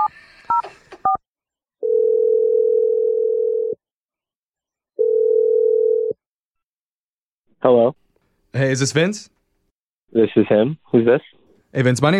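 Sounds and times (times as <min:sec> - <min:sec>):
outgoing call's electronic ringback tone: 0:01.8 - 0:03.8, 0:05.0 - 0:06.2
speech: 0:07.6 - 0:09.4, 0:10.1 - 0:12.1.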